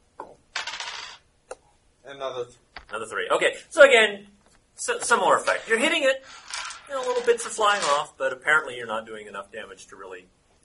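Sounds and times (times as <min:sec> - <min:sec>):
single die rattling across a hard tabletop: 0:00.5 - 0:01.2, 0:05.0 - 0:08.2
speech: 0:02.1 - 0:10.4.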